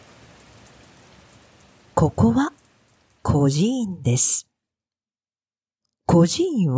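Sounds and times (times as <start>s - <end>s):
steady rain pattering on a surface: 0.0s - 4.4s
speech: 2.0s - 2.6s, 3.4s - 4.5s, 6.1s - 6.7s.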